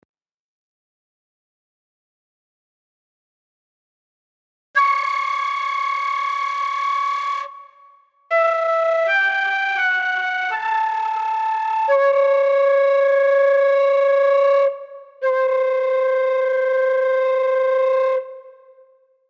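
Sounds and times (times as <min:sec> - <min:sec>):
flute flutter-tonguing: 0:04.8 - 0:18.8.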